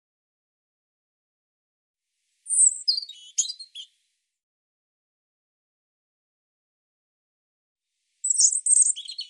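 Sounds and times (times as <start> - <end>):
European robin singing: 2.5 - 4.0, 8.2 - 9.2.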